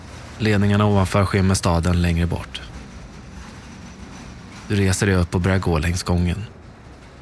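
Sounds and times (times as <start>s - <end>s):
train rolling along tracks with broadband clatter: 0.0s - 7.1s
speech: 0.4s - 2.7s, 4.7s - 6.6s.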